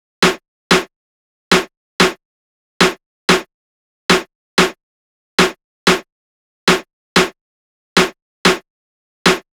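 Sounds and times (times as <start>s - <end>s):
Latin drum loop with snare: 0.2s - 0.9s, 1.5s - 2.2s, 2.8s - 3.5s, 4.1s - 4.8s, 5.4s - 6.1s, 6.7s - 7.4s, 8.0s - 8.6s, 9.3s - 9.5s.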